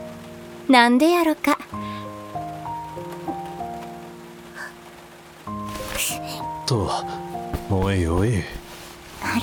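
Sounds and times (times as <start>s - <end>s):
steady rain pattering: 0.0s - 9.4s
speech: 0.7s - 2.0s, 6.0s - 8.6s.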